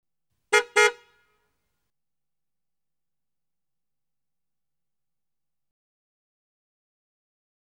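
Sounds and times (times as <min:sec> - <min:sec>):
American car horn: 0:00.5 - 0:01.3.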